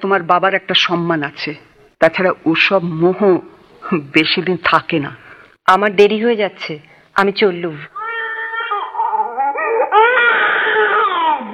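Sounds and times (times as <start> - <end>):
speech: 0.0 - 8.0
small child crying and whining while refusing milk: 8.0 - 11.5.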